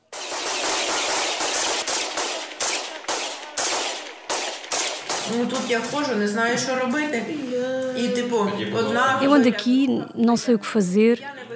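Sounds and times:
loud blasts from an attack: 0:00.0 - 0:06.9
speech: 0:05.3 - 0:11.5.

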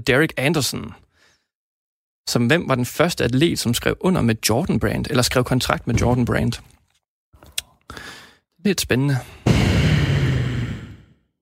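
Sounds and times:
speech: 0:00.0 - 0:01.0, 0:02.3 - 0:06.8, 0:07.9 - 0:10.0
breath blown into a microphone: 0:09.4 - 0:11.2.

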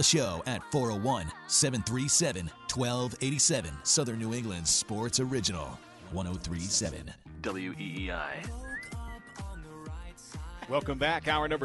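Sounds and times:
speech: 0:00.0 - 0:08.7, 0:10.7 - 0:11.6
upbeat pop backing track: 0:00.0 - 0:11.6
person whistling a bright pop song melody: 0:08.4 - 0:09.7.

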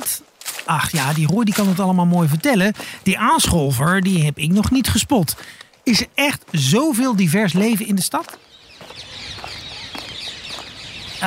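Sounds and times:
speech: 0:00.7 - 0:08.5
rose-ringed parakeets calling: 0:08.4 - 0:11.2.

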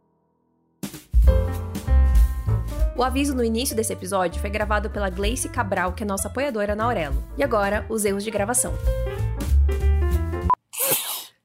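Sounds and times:
short stretch of music: 0:00.0 - 0:10.6
speech: 0:03.0 - 0:09.2
loud sneeze, a sharp breathy burst: 0:10.7 - 0:11.4.

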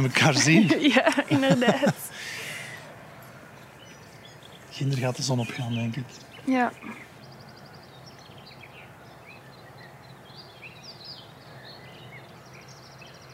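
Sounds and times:
speech: 0:00.0 - 0:02.4, 0:04.8 - 0:07.1
laughter: 0:00.0 - 0:02.8
steady low hum: 0:00.0 - 0:08.2
many birds chirping and twittering at dawn: 0:00.0 - 0:13.3.

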